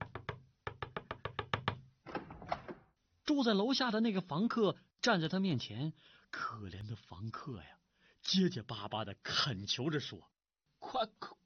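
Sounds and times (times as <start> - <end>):
loud pounding on a door: 0.0 - 1.9
speech: 3.3 - 11.4.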